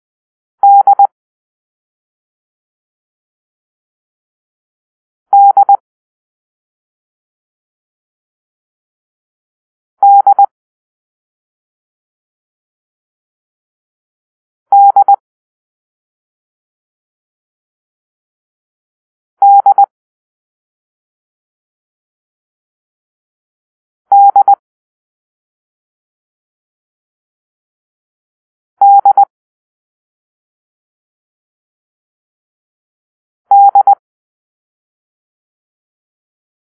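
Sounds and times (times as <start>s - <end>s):
morse code beeps for the letter D: 0.6s - 1.1s, 5.3s - 5.8s, 10.0s - 10.5s, 14.7s - 15.2s, 19.4s - 19.9s, 24.1s - 24.6s, 28.8s - 29.3s, 33.5s - 34.0s.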